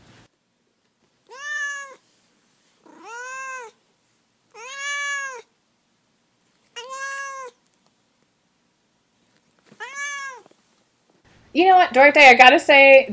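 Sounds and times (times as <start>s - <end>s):
cat meowing: 1.3s - 2.0s, 2.8s - 3.8s, 4.5s - 5.5s, 6.7s - 7.6s, 9.8s - 10.5s
speech: 11.6s - 13.1s.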